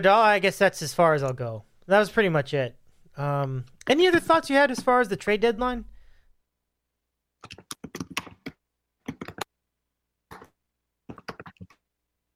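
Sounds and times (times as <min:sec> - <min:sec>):
speech: 0:00.0 - 0:05.9
typing on a computer keyboard: 0:07.4 - 0:09.5.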